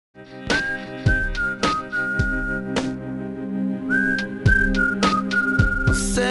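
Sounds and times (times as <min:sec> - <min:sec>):
whistle ringtone: 0:00.5 - 0:02.8, 0:03.9 - 0:06.2.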